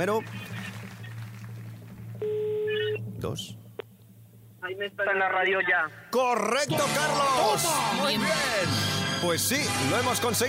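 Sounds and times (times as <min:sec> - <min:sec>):
speech: 0:00.0 - 0:00.5, 0:03.2 - 0:03.6, 0:04.6 - 0:10.4
steady low hum: 0:00.0 - 0:06.2
faint phone beeps: 0:02.2 - 0:03.0
telephone line ringing tone: 0:02.2 - 0:03.0.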